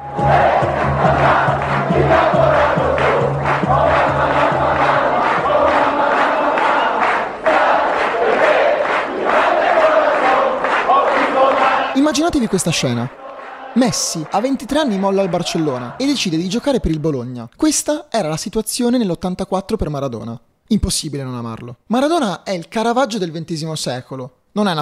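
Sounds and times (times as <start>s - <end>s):
large stadium crowd of football fans chanting a player's name: 0.0s - 16.2s
speech: 12.1s - 13.2s, 13.8s - 24.8s.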